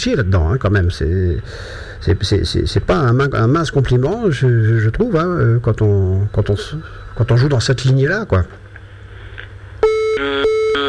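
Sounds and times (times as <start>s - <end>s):
speech: 0.0s - 8.6s, 10.2s - 10.6s
faint low hum: 0.0s - 10.8s
electronic telephone ringing: 9.8s - 10.8s.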